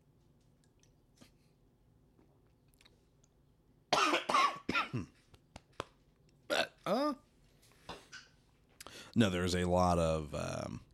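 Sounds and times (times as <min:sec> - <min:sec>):
person coughing to clear a scratchy throat: 0:03.9 - 0:05.2, 0:06.5 - 0:07.2
speech: 0:09.2 - 0:10.9.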